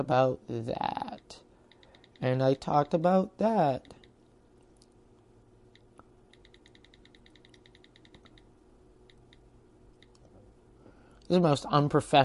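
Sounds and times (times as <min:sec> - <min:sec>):
speech: 0:00.0 - 0:01.4, 0:02.2 - 0:04.0, 0:11.3 - 0:12.2
computer keyboard clicking while deleting notes: 0:01.7 - 0:02.4, 0:05.7 - 0:10.3.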